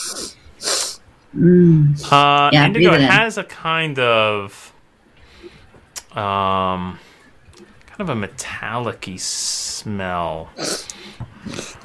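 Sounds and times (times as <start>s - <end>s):
loud nasal sniff: 0.0s - 1.0s
speech: 1.3s - 4.7s, 6.1s - 7.1s, 8.0s - 11.8s.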